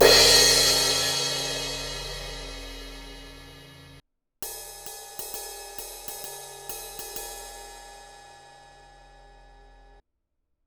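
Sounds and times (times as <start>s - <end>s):
Paiste 18 inch crash cymbal: 0.0s - 10.0s.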